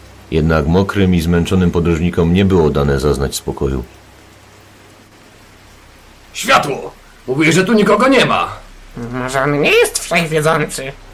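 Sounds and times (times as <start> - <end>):
heavy rain falling: 0.0 - 11.1
speech: 0.3 - 4.0, 6.4 - 11.1.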